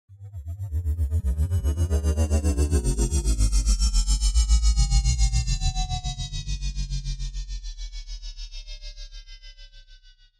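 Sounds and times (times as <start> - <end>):
alien spacecraft passing by: 0.1 - 8.0.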